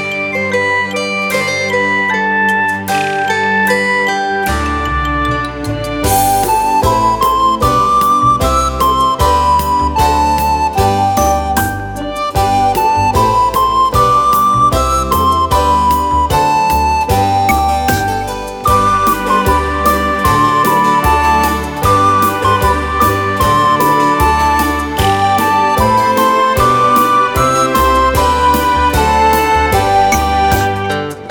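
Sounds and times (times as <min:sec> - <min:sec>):
recorder playing a folk tune: 0:00.1 - 0:31.2.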